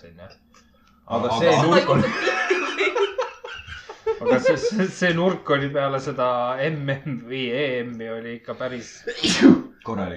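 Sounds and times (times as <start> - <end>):
speech: 0.0 - 3.1, 4.2 - 10.1
conversational speech: 1.1 - 10.1
laughter: 1.4 - 5.5
sharp sneeze: 9.1 - 9.7.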